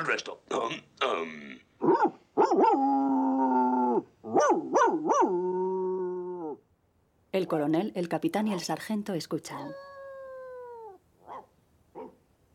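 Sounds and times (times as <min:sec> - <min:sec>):
speech: 0:00.0 - 0:01.7, 0:07.5 - 0:09.9
dog barking: 0:01.8 - 0:02.8, 0:04.3 - 0:05.4, 0:11.2 - 0:12.2
dog howling, yelping and whining: 0:01.8 - 0:06.6, 0:09.6 - 0:12.2.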